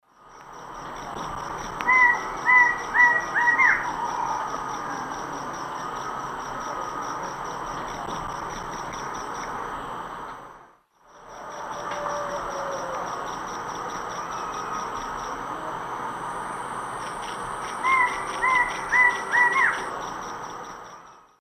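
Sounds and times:
Thamnophilus murinus singing in eastern South American lowlands: 0:01.0 - 0:08.1, 0:11.0 - 0:15.7, 0:16.3 - 0:21.4.

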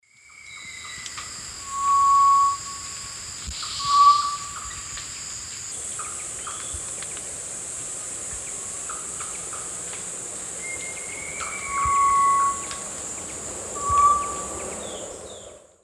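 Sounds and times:
Tinamus guttatus song in eastern lowlands of South America: 0:00.3 - 0:06.8, 0:10.6 - 0:15.8.

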